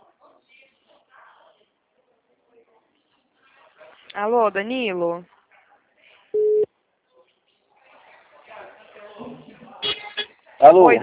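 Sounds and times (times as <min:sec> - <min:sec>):
speech: 0:04.2 - 0:05.3, 0:10.7 - 0:11.0
telephone busy tone beep after a dropped call: 0:06.4 - 0:06.7.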